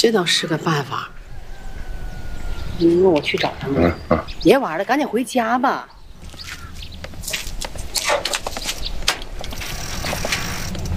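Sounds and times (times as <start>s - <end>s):
speech: 0.0s - 1.2s, 2.8s - 6.6s
bicycle mechanical rattles: 7.1s - 10.9s
bicycle freewheel ratchet ticking: 9.6s - 10.9s.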